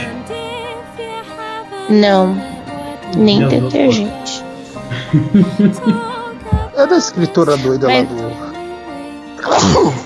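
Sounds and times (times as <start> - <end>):
speech: 1.9 - 2.5, 3.1 - 4.4, 5.1 - 6.1, 6.8 - 8.5
laughter: 4.8 - 8.6
person sneezing: 9.4 - 10.0.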